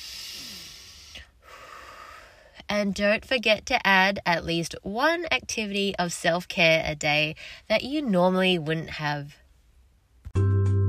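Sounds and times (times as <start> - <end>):
deep breathing in and out: 0.0 - 2.6
speech: 2.7 - 9.4.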